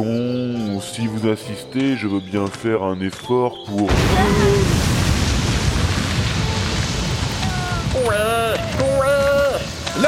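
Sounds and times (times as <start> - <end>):
speech: 0.0 - 4.8
loud sustained explosion rumbling: 3.9 - 10.0.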